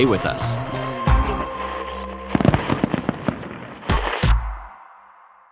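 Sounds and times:
speech: 0.0s - 0.8s
Fourth of July fireworks popping and crackling in the night sky: 2.3s - 4.7s.

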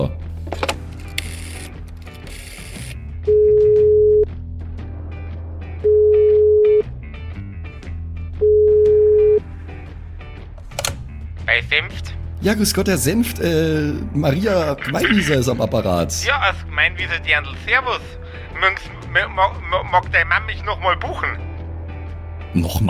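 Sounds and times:
clattery mechanical handling noise: 0.4s - 2.9s, 10.6s - 11.1s
telephone ringback tone while a call is placed: 3.3s - 4.3s, 5.9s - 6.8s, 8.4s - 9.4s
speech: 11.8s - 21.5s, 22.5s - 22.8s
laughter: 14.8s - 15.4s.

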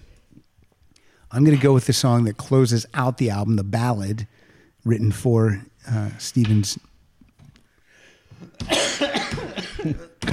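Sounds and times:
speech: 1.3s - 6.9s, 9.8s - 10.3s
person coughing in a fit: 8.6s - 10.3s
person sneezing: 8.6s - 10.3s.

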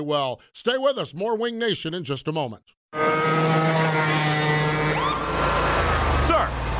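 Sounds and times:
speech: 0.0s - 4.6s, 6.2s - 6.7s
lawnmower engine speeding by in a residential area: 3.0s - 6.7s.

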